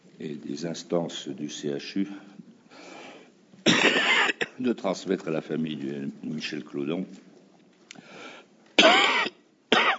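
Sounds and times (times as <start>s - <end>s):
speech: 0.2s - 3.0s, 4.6s - 7.3s
person with rhinitis, pharyngitis, laryngitis and flu coughing: 3.7s - 4.6s, 8.8s - 9.9s.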